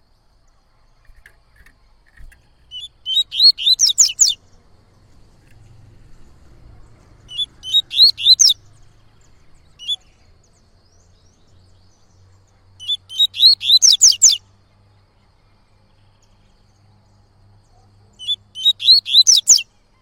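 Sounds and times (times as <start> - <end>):
yellow-bellied seedeater singing slurred whistles: 2.4 - 4.4, 7.3 - 8.7, 12.8 - 14.4, 18.2 - 19.7.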